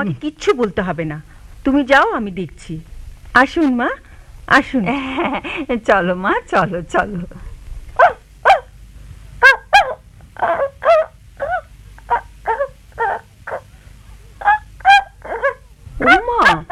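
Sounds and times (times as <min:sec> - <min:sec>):
speech: 0:00.0 - 0:07.5
shaggy dog with long white fur barking and yelping: 0:08.0 - 0:08.7, 0:09.4 - 0:13.7, 0:14.4 - 0:16.7.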